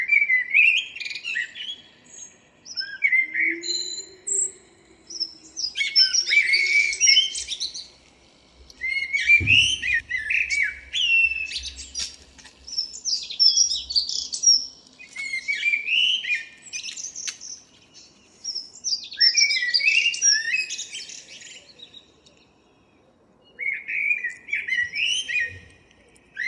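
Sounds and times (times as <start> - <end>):
common blackbird Turdus merula singing: 0.0 - 8.0, 8.7 - 26.4
low thump: 9.4 - 10.1.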